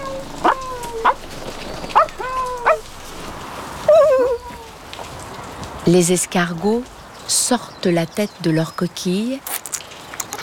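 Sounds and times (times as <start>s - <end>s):
dog wavering whine: 0.0s - 2.9s, 3.8s - 4.8s
dog barking: 0.4s - 1.2s, 1.9s - 2.8s
speech: 5.9s - 9.6s.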